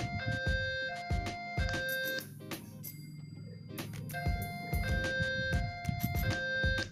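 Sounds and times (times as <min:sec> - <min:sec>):
toy fire truck siren with electronic stepped tones: 0:00.0 - 0:02.3, 0:04.1 - 0:06.9.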